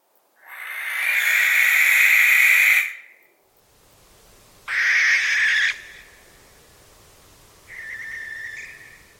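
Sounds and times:
barn owl hissing screeches: 0:00.4 - 0:03.1, 0:04.7 - 0:06.2, 0:07.7 - 0:09.1.

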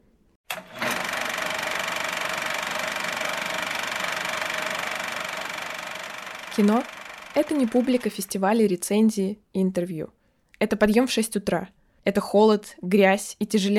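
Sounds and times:
film camera motor running: 0:00.5 - 0:08.2
speech: 0:06.6 - 0:13.7.

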